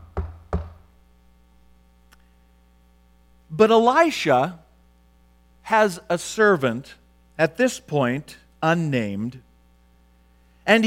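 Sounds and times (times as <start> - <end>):
knocking on a door: 0.0 - 0.8
faint low electrical hum: 0.0 - 10.8
speech: 3.6 - 4.6, 5.7 - 9.5, 10.6 - 10.8.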